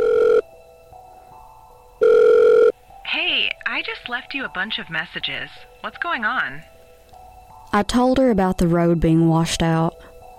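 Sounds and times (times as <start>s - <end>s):
telephone ringback tone after a call is dialed: 0.0s - 0.5s, 2.0s - 2.8s
speech: 3.8s - 6.7s, 7.7s - 9.9s.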